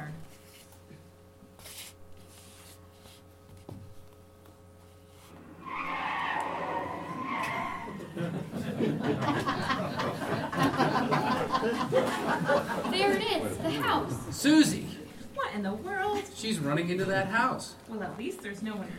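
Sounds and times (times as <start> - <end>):
car tires screeching in a skid while braking to a halt: 5.3 - 8.2
laughter: 7.5 - 14.3
speech: 12.6 - 14.9, 16.4 - 18.9.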